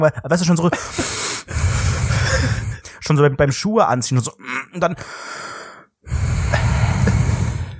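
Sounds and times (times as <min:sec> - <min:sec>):
speech: 0:00.0 - 0:01.7, 0:03.1 - 0:05.4
voice imitating heavy effortful breathing: 0:00.8 - 0:03.0, 0:05.0 - 0:07.7.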